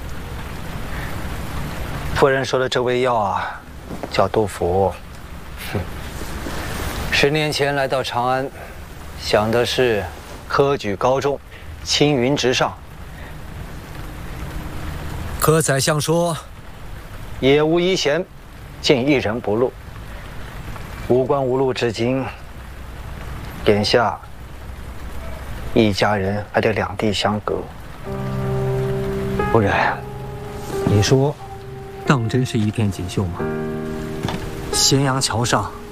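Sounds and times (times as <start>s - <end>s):
steady rain: 0.0s - 35.9s
speech: 2.2s - 6.0s, 7.2s - 8.6s, 9.2s - 12.8s, 15.4s - 16.5s, 17.4s - 19.8s, 21.1s - 22.4s, 23.6s - 24.3s, 25.8s - 28.2s, 29.5s - 30.1s, 30.9s - 31.4s, 32.1s - 33.7s, 34.8s - 35.8s
sustained musical tone: 28.1s - 35.9s.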